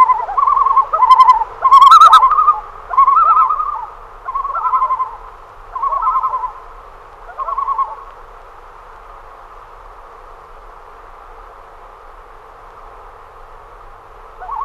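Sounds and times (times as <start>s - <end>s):
common loon tremolo: 0.0s - 8.4s, 13.6s - 14.6s.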